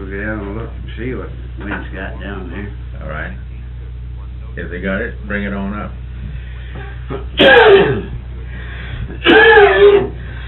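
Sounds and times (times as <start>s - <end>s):
low hum: 0.0s - 10.4s
speech: 0.1s - 3.5s, 4.6s - 6.0s, 6.8s - 8.2s
whooping cough coughing fit with strained rising whoop: 7.1s - 8.1s, 9.2s - 10.1s.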